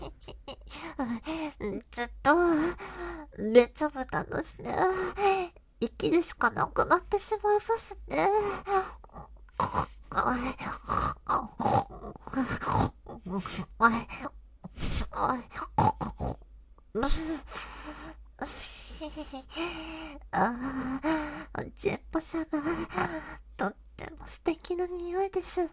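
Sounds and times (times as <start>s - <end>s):
speech: 1.0s - 9.0s, 9.6s - 16.4s, 17.0s - 25.7s
person imitating a pig snorting through the nose: 9.6s - 13.7s, 14.7s - 16.4s.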